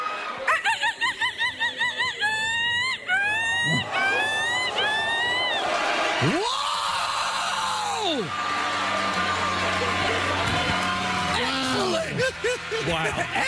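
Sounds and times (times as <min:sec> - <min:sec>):
laughter: 0:00.0 - 0:06.6, 0:08.1 - 0:13.4
crowd exclaiming and cheering: 0:00.0 - 0:13.4
woman imitating a seagull call: 0:02.1 - 0:05.5
speech: 0:06.2 - 0:06.4, 0:12.8 - 0:13.4.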